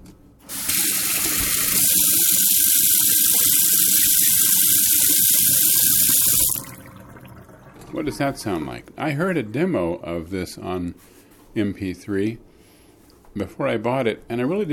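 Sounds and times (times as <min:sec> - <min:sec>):
water running from a tap into a sink: 0:00.5 - 0:08.4
speech: 0:08.0 - 0:12.5, 0:13.3 - 0:14.7.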